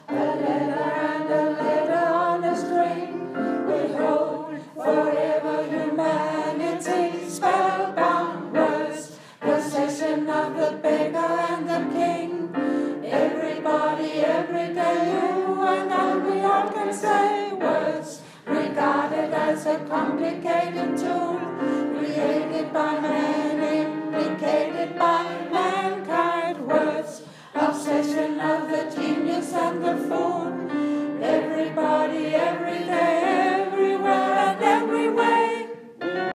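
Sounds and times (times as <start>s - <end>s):
soprano singing a verse: 0.0s - 36.3s.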